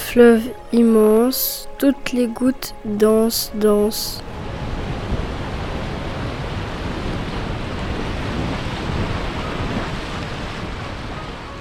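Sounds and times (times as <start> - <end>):
ocean surf: 0.0 - 11.5
speech: 0.1 - 4.3
wind-like rumble: 3.8 - 11.5.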